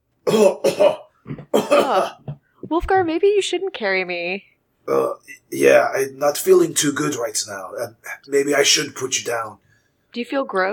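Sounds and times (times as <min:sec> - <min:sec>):
speech: 0:00.3 - 0:01.0, 0:01.8 - 0:10.7
person coughing: 0:00.3 - 0:02.3.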